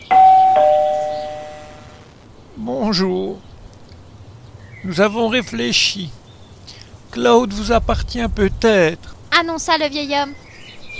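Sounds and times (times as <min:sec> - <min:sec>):
doorbell at a front door chiming a two-note ding-dong: 0:00.0 - 0:02.0
speech: 0:02.6 - 0:03.5, 0:04.8 - 0:06.2, 0:07.1 - 0:10.4.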